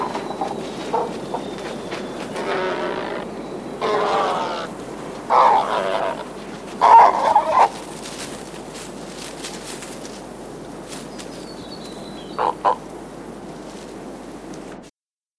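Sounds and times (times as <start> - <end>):
royal spoonbill grunting calls: 0.0 - 8.0, 12.1 - 12.9
steady background hiss: 0.0 - 14.9.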